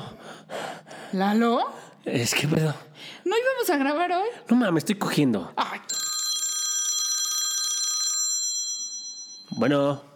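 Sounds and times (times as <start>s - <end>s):
speech: 1.1s - 5.9s, 9.6s - 10.1s
telephone ringing with a metallic bell: 5.9s - 9.7s.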